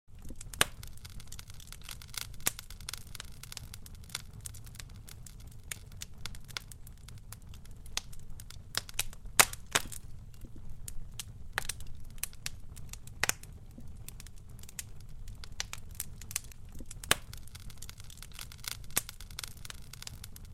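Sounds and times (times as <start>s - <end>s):
fire crackling and burning: 0.1s - 20.5s.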